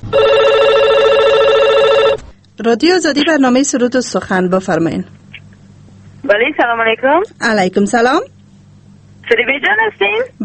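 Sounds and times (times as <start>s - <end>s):
telephone ringing for a listener's call to a radio request program: 0.0s - 2.2s
speech: 2.6s - 5.2s, 6.2s - 8.4s, 9.2s - 10.4s.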